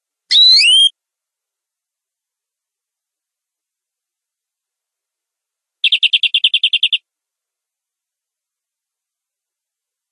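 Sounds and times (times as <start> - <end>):
domestic canary giving long rolling song trill: 0.3 - 0.9, 5.8 - 7.1.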